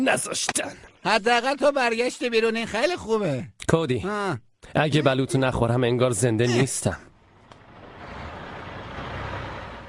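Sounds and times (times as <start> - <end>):
speech: 0.0 - 7.1
heavy truck rumbling past: 7.2 - 9.8.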